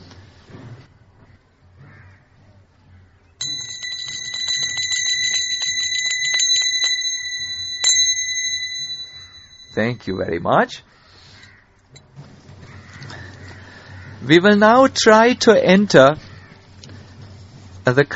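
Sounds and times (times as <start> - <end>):
bell ringing during a devotional chanting session: 3.4 - 10.8
speech: 9.8 - 11.0, 14.3 - 16.2, 17.9 - 18.1.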